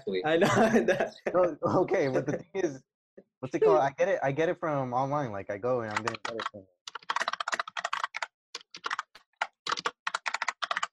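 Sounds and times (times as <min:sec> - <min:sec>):
speech: 0:00.0 - 0:06.8
laughter: 0:00.3 - 0:02.8
loud clacky computer keyboard typing: 0:05.9 - 0:10.9.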